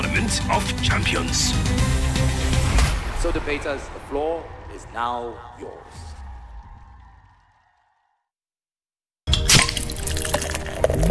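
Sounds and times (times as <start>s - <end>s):
speech: 0.2s - 2.6s, 3.2s - 6.0s
stout beer flowing as it is poured: 9.5s - 11.0s.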